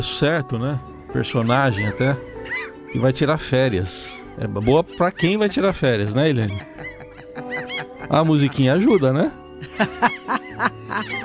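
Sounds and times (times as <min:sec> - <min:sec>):
speech: 0:00.0 - 0:02.3, 0:02.9 - 0:06.8, 0:08.1 - 0:11.2
seagulls squawking: 0:00.0 - 0:11.2
laughter: 0:05.2 - 0:11.2.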